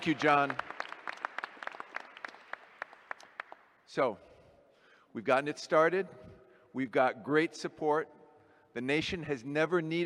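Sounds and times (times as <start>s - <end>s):
speech: 0.0s - 0.7s, 3.9s - 4.3s, 5.2s - 8.2s, 8.8s - 10.0s
audience applauding a filmmaker after a film: 0.0s - 3.7s.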